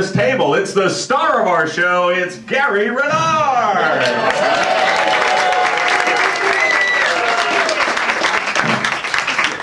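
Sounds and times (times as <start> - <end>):
speech: 0.0 - 4.9
live audience applauding: 4.0 - 9.6
audience cheers and whistles: 4.3 - 8.1.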